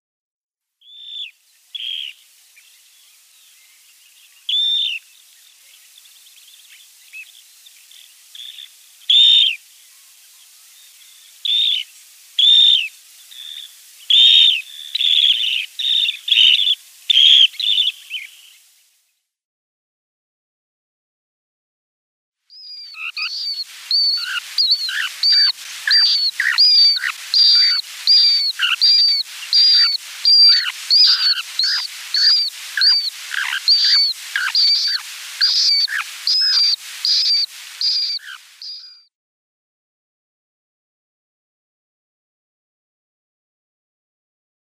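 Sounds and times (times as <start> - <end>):
dunlin calls: 8.3 - 9.6, 11.4 - 18.4, 22.6 - 39.1.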